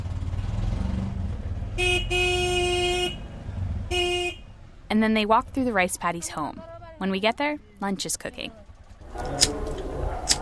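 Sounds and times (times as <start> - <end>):
motorized rickshaw engine rumbling in traffic: 0.0 - 10.4
traffic horns honking: 1.7 - 4.7
speech: 4.9 - 8.6.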